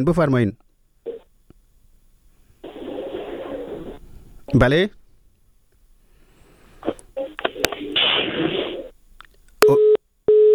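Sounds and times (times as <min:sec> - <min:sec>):
speech: 0:00.0 - 0:00.6, 0:04.5 - 0:05.0
crackling garbled telephone line noise: 0:01.0 - 0:01.6, 0:02.3 - 0:04.7, 0:05.7 - 0:09.6
telephone busy tone: 0:09.6 - 0:10.5.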